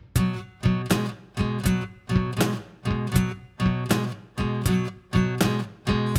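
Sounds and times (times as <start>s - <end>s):
blues guitar in E with B spread: 0.2s - 6.1s.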